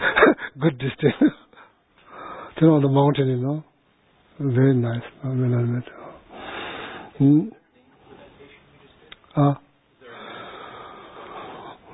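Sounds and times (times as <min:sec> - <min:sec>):
speech: 0:00.6 - 0:01.4, 0:02.6 - 0:03.7, 0:04.4 - 0:06.0, 0:07.2 - 0:07.6, 0:09.4 - 0:09.6
slow deep breathing through the nose during breathing meditation: 0:02.0 - 0:02.6, 0:06.0 - 0:07.2, 0:10.0 - 0:11.9.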